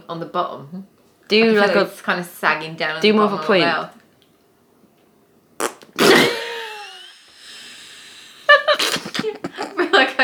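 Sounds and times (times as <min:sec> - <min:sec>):
speech: 0:00.1 - 0:04.0
person blowing a wet raspberry mimicking a fart: 0:05.6 - 0:07.2, 0:08.5 - 0:09.8
person laughing: 0:06.0 - 0:07.3, 0:08.4 - 0:10.0.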